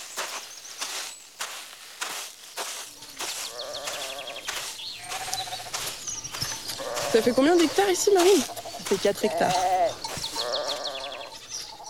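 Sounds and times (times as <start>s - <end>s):
goats bleating: 3.4s - 5.8s, 6.8s - 11.4s
speech: 7.1s - 9.7s.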